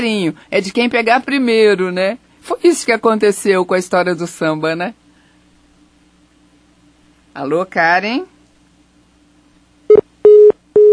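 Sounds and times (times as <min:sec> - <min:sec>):
speech: 0:00.0 - 0:05.0, 0:07.4 - 0:08.3
telephone line tone beeps after a dropped call: 0:09.9 - 0:10.9.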